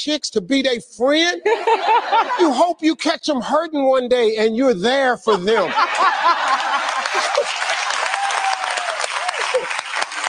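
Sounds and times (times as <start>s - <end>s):
speech: 0.0s - 7.5s
laughter: 1.4s - 2.8s, 5.3s - 8.1s, 9.2s - 10.0s
audience applause: 5.9s - 10.2s
faint cheers: 7.1s - 9.8s.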